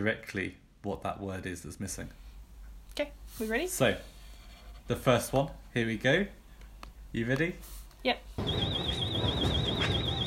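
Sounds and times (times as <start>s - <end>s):
speech: 0.0s - 2.3s, 3.0s - 4.1s, 4.9s - 6.4s, 7.1s - 8.7s
warbling electronic alarm: 8.4s - 10.2s.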